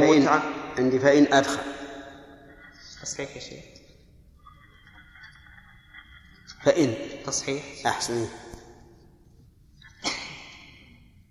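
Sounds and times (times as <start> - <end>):
speech: 0.2 - 1.8, 3.0 - 3.8, 6.6 - 8.5
person sneezing: 10.0 - 10.8.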